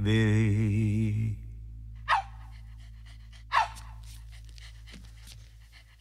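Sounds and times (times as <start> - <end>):
speech: 0.0 - 0.8
low steady hum: 0.0 - 5.9
dog panting: 2.1 - 5.9.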